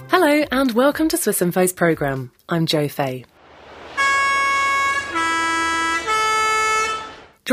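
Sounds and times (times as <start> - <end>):
speech: 0.2 - 3.3
Swiss post bus horn blaring three-note warning melody: 4.0 - 7.4.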